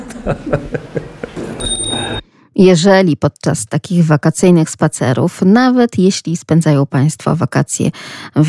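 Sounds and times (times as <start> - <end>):
laughter: 0.0 - 1.6
speech: 0.2 - 1.0, 2.6 - 8.4
small hanging good-luck bell ringing in a museum: 1.4 - 2.3.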